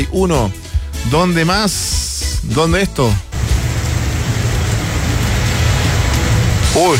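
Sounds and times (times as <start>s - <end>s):
speech: 0.2s - 3.3s, 6.8s - 6.9s
deep continuous rumble of thunder: 3.4s - 6.8s
heavy rain: 3.4s - 6.9s.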